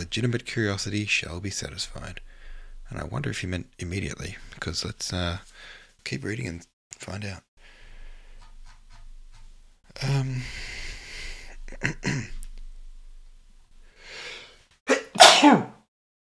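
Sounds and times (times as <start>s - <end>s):
speech: 0.0s - 2.3s, 2.9s - 7.5s, 10.0s - 10.7s, 11.7s - 12.4s, 15.4s - 15.8s
person sneezing: 14.9s - 15.8s.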